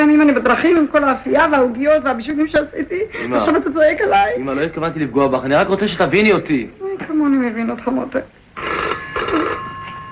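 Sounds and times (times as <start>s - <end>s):
speech: 0.2s - 9.0s
red rotary dial telephone ringing: 8.5s - 10.1s.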